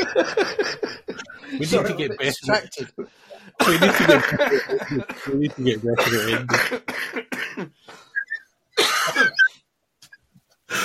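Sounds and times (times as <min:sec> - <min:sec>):
laughter: 0:00.0 - 0:08.3
speech: 0:00.1 - 0:08.1
person coughing harshly: 0:03.6 - 0:05.4, 0:06.0 - 0:07.7, 0:08.8 - 0:09.5.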